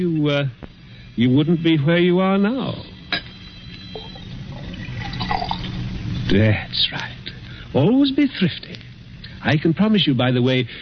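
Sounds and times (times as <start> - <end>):
speech: 0.0 - 2.9, 6.3 - 8.8, 9.4 - 10.8
liquid pouring into a glass decanter: 3.7 - 6.3.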